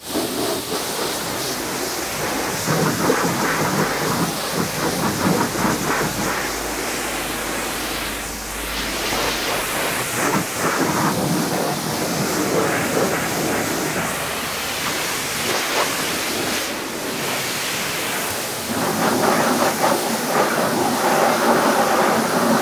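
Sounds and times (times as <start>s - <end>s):
hand car wash: 0.0s - 22.6s.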